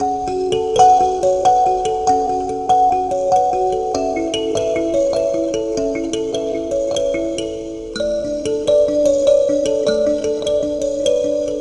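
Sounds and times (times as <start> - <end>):
kalimba: 0.0 - 11.5.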